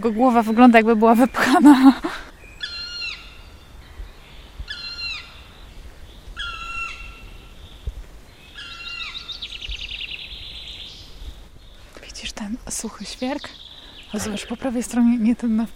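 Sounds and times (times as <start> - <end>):
speech: 0.0 - 2.2, 14.2 - 15.7
faint hiss: 0.0 - 15.7
large black bird calling from the top of a dead spruce: 2.6 - 3.4, 4.6 - 5.5, 6.4 - 7.3, 8.5 - 9.6.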